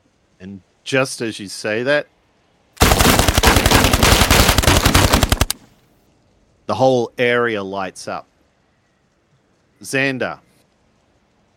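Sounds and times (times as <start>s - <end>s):
speech: 0.4s - 2.2s, 6.7s - 8.3s, 9.8s - 10.5s
rapid automatic gunfire: 2.8s - 5.6s.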